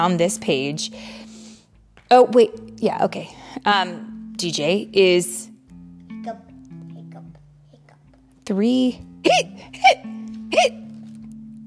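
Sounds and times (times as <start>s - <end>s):
speech: 0.0s - 1.3s, 2.1s - 5.4s, 6.2s - 6.4s, 8.5s - 10.8s
voice imitating a skeleton's hiccups: 9.2s - 11.2s.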